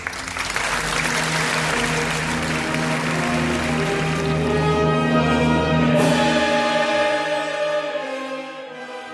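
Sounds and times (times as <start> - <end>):
crowd applauding: 0.0 - 5.7
sustained musical tones: 0.0 - 9.1.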